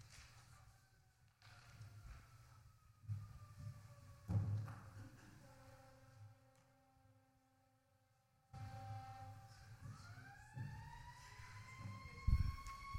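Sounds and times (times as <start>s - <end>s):
emergency vehicle siren passing outside: 1.4s - 4.5s, 8.6s - 12.9s.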